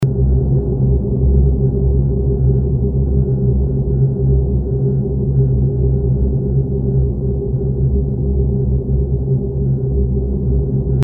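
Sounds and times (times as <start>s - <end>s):
mechanical drone: 0.0s - 11.0s.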